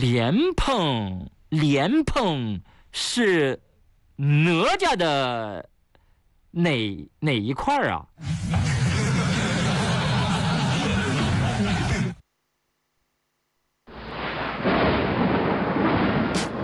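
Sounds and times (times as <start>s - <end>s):
speech: 0.0s - 3.6s, 4.2s - 5.7s, 6.5s - 8.7s
laughter: 8.5s - 12.2s
loud thunder rumbling in a thunderstorm: 13.9s - 16.6s.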